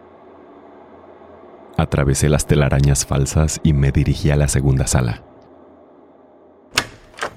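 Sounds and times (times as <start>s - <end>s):
faint low hum: 0.0s - 7.3s
speech: 1.8s - 5.3s
door latch and handle clicks: 6.7s - 7.3s.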